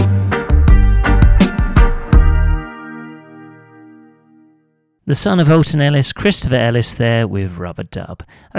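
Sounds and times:
reggae band instrumental hits: 0.0s - 3.0s
speech: 5.1s - 8.5s.

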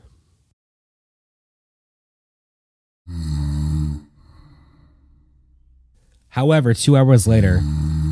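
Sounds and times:
loud rattling gargling snore: 3.1s - 5.0s, 7.3s - 8.0s
speech: 6.3s - 8.0s.

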